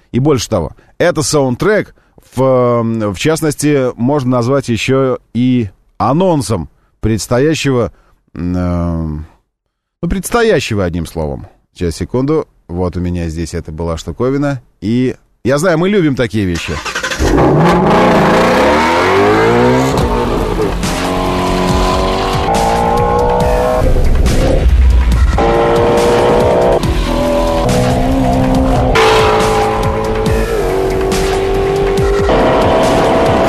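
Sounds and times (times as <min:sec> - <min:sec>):
speech: 0:00.1 - 0:09.3, 0:10.0 - 0:18.2
powerful 5.2-liter V8 engine revving hard to 8000 rpm: 0:16.8 - 0:33.4.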